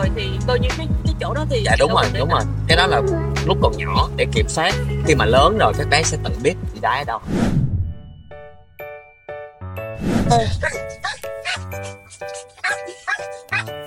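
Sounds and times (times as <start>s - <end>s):
speech: 0.1s - 7.6s, 10.1s - 11.0s
dogs yipping: 2.7s - 3.8s, 10.6s - 13.8s
dogs barking aggressively at unfamiliar dogs: 10.8s - 13.8s.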